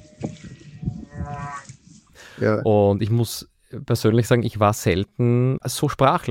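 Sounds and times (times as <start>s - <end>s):
whale call with tonal whistling moan: 0.0s - 1.7s
speech: 2.4s - 6.3s.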